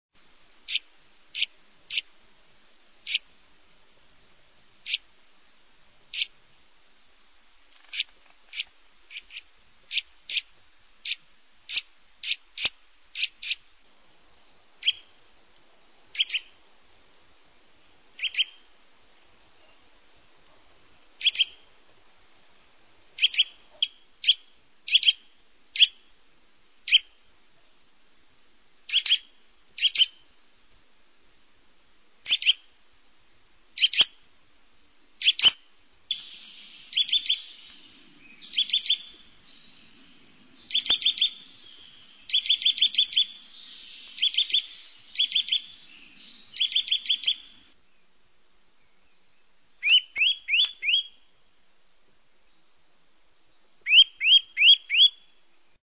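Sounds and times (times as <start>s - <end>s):
Eurasian nuthatch singing: 0.7s - 2.1s, 3.0s - 3.3s, 4.8s - 5.0s, 6.1s - 6.3s, 7.8s - 13.8s, 14.8s - 15.1s, 16.1s - 16.6s, 18.2s - 18.7s, 21.2s - 21.7s, 23.2s - 27.4s, 28.9s - 30.5s, 32.2s - 32.7s, 33.8s - 34.2s, 35.2s - 48.0s, 49.8s - 51.8s, 53.6s - 55.3s.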